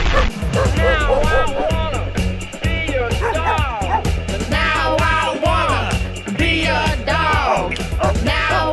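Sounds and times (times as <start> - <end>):
steady low drone: 0.0 - 6.5
people imitating dog barking, yipping and whining: 0.1 - 2.1, 3.1 - 4.2, 7.8 - 8.6.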